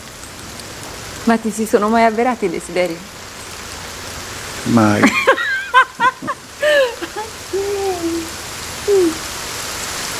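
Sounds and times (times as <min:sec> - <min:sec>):
steady rain falling: 0:00.0 - 0:10.1
speech: 0:01.2 - 0:03.2, 0:04.6 - 0:05.3
laughter: 0:04.8 - 0:07.7
brief voice-like utterances: 0:06.1 - 0:09.4.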